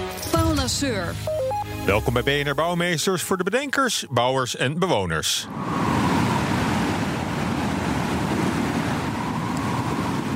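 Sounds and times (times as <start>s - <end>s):
speech: 0.7s - 5.9s
strong blustery wind with faint whistling: 5.4s - 10.3s.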